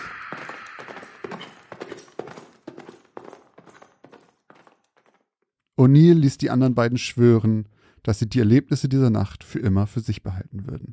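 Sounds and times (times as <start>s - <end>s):
horse galloping at night: 0.0s - 5.3s
speech: 5.8s - 10.9s.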